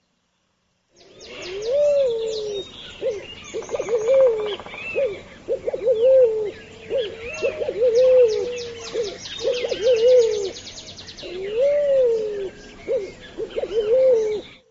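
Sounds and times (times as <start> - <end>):
other birds chirping and twittering: 1.0 - 14.6
red-billed pigeon cooing: 1.1 - 10.6, 11.2 - 14.6.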